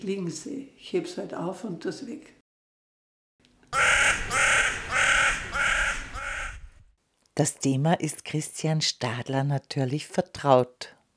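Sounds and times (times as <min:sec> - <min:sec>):
speech: 0:00.0 - 0:02.4, 0:07.4 - 0:11.0
crows cawing: 0:03.8 - 0:06.8.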